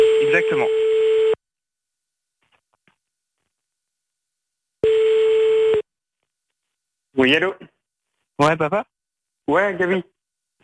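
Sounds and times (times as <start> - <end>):
brief electronic telephone tone: 0.0 - 1.4, 4.8 - 5.9
speech: 0.4 - 0.8, 7.2 - 7.7, 8.4 - 8.9, 9.5 - 10.1.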